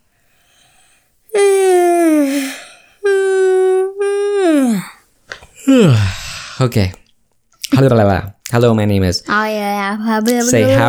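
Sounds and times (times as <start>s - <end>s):
breathy intake: 0.3s - 3.4s, 5.6s - 6.7s
long drawn-out yawn with moaning tones: 1.3s - 5.0s, 5.6s - 6.4s
speech: 6.6s - 7.0s, 7.8s - 10.8s.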